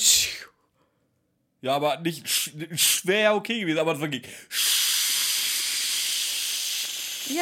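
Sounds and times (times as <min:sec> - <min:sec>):
speech: 0:01.6 - 0:04.6
steam hissing in a steam sauna: 0:04.5 - 0:07.4.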